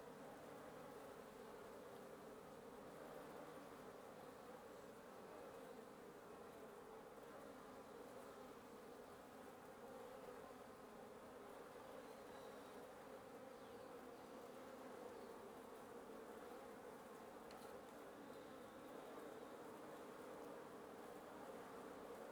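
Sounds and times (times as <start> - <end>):
wasps buzzing in a nest under the roof of a residence in Antigua Guatemala: 0.0 - 22.3.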